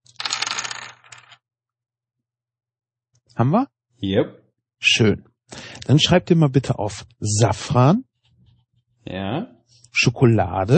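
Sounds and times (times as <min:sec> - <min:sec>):
dice rattling and clattering across a hard surface: 0:00.0 - 0:01.4
speech: 0:03.4 - 0:08.1, 0:09.0 - 0:10.7.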